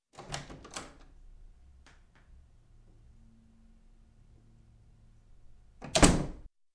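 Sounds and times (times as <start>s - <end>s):
office door opening and closing: 0.1s - 1.1s, 5.8s - 6.5s.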